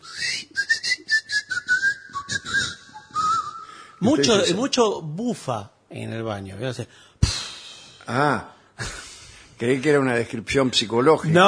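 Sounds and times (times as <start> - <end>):
person whistling a wavering tuneful line: 0.0 - 4.4
speech: 4.0 - 7.1, 8.1 - 9.0, 9.6 - 11.4.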